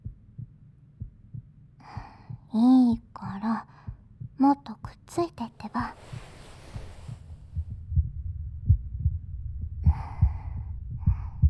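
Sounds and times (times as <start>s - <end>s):
heartbeat heard with chests pressed together: 0.0s - 11.4s
speech: 2.5s - 3.6s
breathy hiss: 5.5s - 7.7s.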